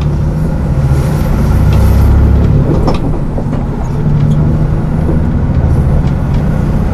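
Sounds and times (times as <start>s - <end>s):
moving bus engine rumble: 0.0s - 6.9s
road noise from inside a moving bus: 0.0s - 6.9s.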